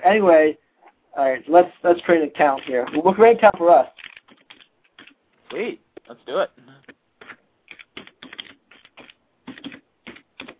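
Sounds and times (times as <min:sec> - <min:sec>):
speech: 0:00.1 - 0:00.6, 0:01.2 - 0:04.0, 0:05.5 - 0:06.8
typing on a computer keyboard: 0:03.9 - 0:05.6, 0:07.2 - 0:10.5.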